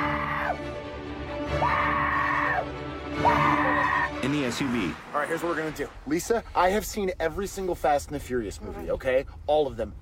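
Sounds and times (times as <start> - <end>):
man screaming: 0.0 - 0.7, 1.4 - 4.3
speech: 4.2 - 10.0.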